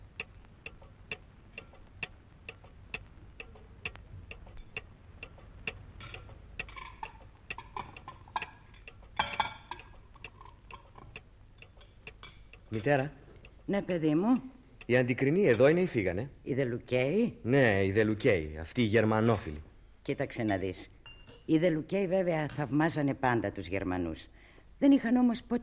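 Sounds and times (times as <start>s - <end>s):
clock ticking: 0.0s - 17.5s
speech: 12.8s - 20.9s, 21.5s - 25.6s.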